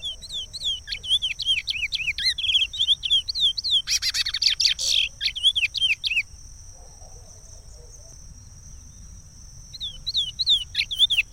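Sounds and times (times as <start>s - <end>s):
chestnut-bellied seed finch singing: 0.0s - 6.3s, 9.7s - 11.3s.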